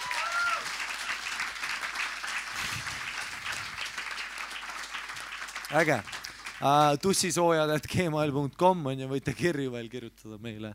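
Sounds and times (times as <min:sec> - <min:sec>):
audience applause: 0:00.0 - 0:07.0
speech: 0:05.7 - 0:10.7.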